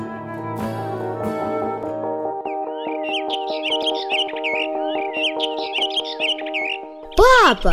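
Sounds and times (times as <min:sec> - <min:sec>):
steady sustained musical tone: 0:00.0 - 0:07.1
flock of sparrows chirping: 0:02.4 - 0:07.7
speech: 0:07.5 - 0:07.7.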